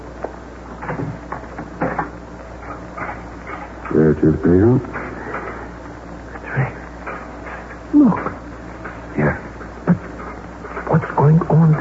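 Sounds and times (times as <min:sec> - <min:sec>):
low steady hum: 0:00.0 - 0:11.7
door opening with clunks and scraping rattles: 0:00.8 - 0:04.0
speech: 0:03.9 - 0:05.0.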